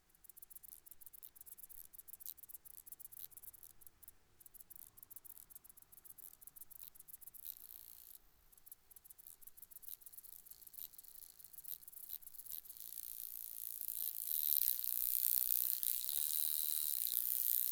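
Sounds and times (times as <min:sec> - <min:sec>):
Stenobothrus rubicundulus courtship wing buzzing in flight in Piestingtal: 0:10.6 - 0:17.7.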